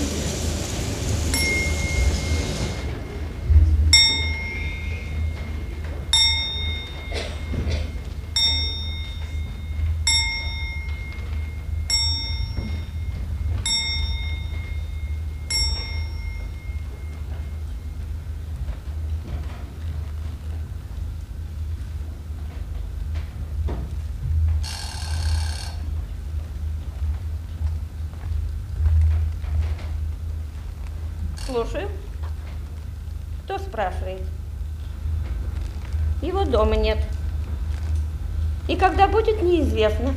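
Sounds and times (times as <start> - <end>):
low steady rumble: 0.0 - 24.6, 25.8 - 40.1
old-fashioned telephone bell ringing in an apartment: 1.3 - 3.4, 4.0 - 17.7, 24.6 - 25.9
speech: 31.5 - 32.0, 33.8 - 34.3, 36.2 - 37.0, 38.7 - 40.1.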